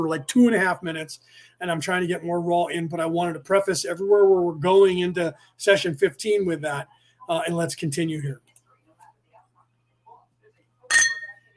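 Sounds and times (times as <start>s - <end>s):
speech: 0.0s - 8.5s
sharp glass clink against a coffee glass: 10.9s - 11.5s.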